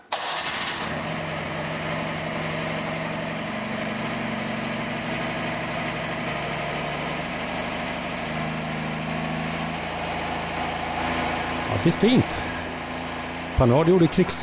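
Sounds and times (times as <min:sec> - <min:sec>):
vintage car engine cranking and idling roughly: 0:00.0 - 0:14.4
speech: 0:11.8 - 0:12.5, 0:13.6 - 0:14.4.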